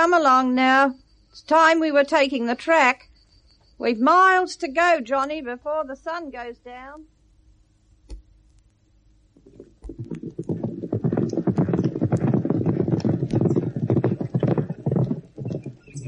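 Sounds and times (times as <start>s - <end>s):
speech: 0.0s - 3.1s, 3.8s - 7.1s
police horse hooves clip-clopping on hard ground: 9.4s - 16.0s.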